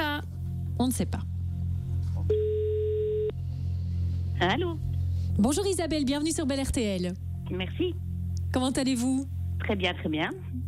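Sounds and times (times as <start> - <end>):
constant low hum: 0.0 - 10.6
speech: 0.8 - 1.3, 4.4 - 10.6
telephone ringback tone: 2.3 - 3.3.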